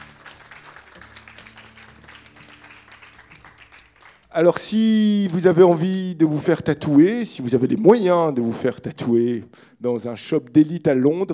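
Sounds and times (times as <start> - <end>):
crowd applauding: 0.0 - 5.6
speech: 4.4 - 11.3.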